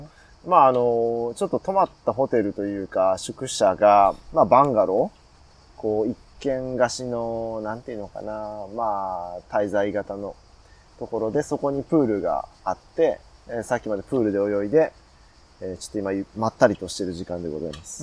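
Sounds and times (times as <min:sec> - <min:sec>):
cicadas singing outdoors: 0:00.0 - 0:18.0
speech: 0:00.4 - 0:05.2, 0:05.8 - 0:10.4, 0:11.0 - 0:15.0, 0:15.6 - 0:18.0.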